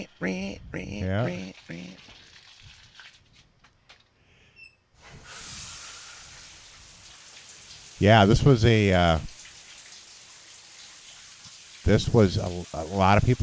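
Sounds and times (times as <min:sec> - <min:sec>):
speech: 0:00.1 - 0:02.2, 0:08.0 - 0:09.3, 0:11.9 - 0:13.4
shower water running in a film scene: 0:01.3 - 0:03.5, 0:05.0 - 0:13.4.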